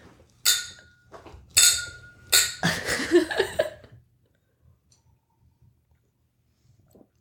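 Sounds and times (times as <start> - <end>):
glasses of sparkling wine clinking in a toast: 0.4 - 2.8.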